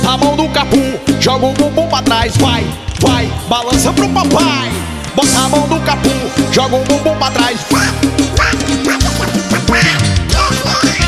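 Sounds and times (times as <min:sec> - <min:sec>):
thumping music track with a heavy bass beat: 0:00.0 - 0:11.0
speech: 0:00.1 - 0:08.7
cartoonish duck voice quacking in raspy bursts: 0:07.7 - 0:11.0.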